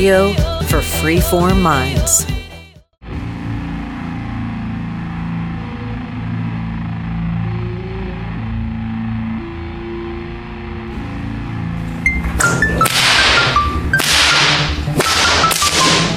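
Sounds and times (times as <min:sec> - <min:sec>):
speech: 0:00.0 - 0:02.3
low steady rumble: 0:03.0 - 0:12.8
sharp loud whip cracks: 0:12.8 - 0:16.1.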